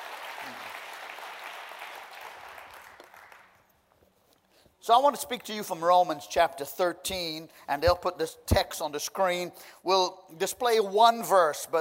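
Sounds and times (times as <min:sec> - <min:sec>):
audience applauding: 0:00.0 - 0:03.6
speech: 0:04.8 - 0:11.7.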